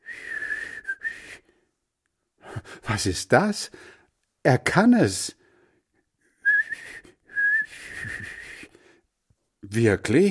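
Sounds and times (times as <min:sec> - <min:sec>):
person whistling with pursed lips: 0:00.0 - 0:01.5, 0:06.4 - 0:08.8
speech: 0:02.9 - 0:05.4, 0:09.7 - 0:10.2.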